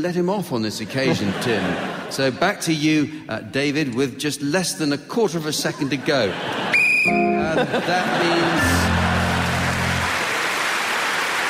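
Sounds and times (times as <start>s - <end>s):
speech: 0.0s - 9.0s
laughter: 0.8s - 2.5s, 5.5s - 10.3s
crowd applause: 6.4s - 11.4s
shrill whistle blast ending the round: 6.7s - 7.4s.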